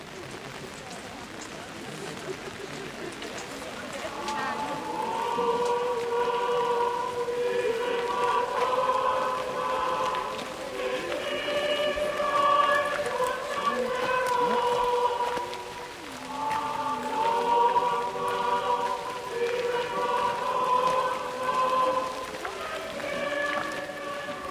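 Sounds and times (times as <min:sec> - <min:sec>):
rain pattering on a pilgrimage procession: 0:00.0 - 0:24.4
crowd of pilgrims chanting or singing in droning tones: 0:03.8 - 0:24.4.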